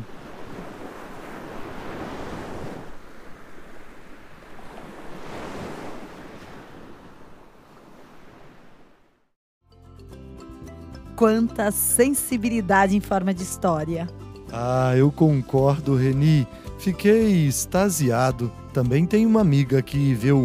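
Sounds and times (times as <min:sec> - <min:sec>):
sea waves heard through a large seashell held to the ear: 0:00.0 - 0:09.2
speech: 0:11.2 - 0:20.4.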